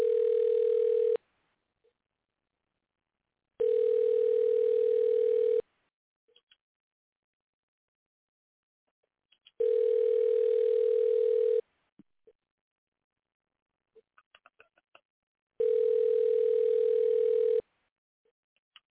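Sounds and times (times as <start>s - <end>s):
long steady telephone beeps while calling a number back: 0.0s - 1.2s, 3.6s - 5.6s, 9.6s - 11.6s, 15.6s - 17.6s.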